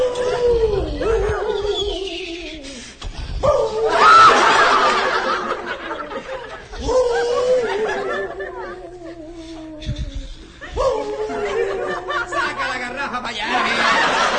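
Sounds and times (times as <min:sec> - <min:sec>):
person imitating a wolf howl: 0:00.0 - 0:02.7, 0:03.4 - 0:04.4, 0:06.7 - 0:12.3
laughter: 0:03.9 - 0:14.3.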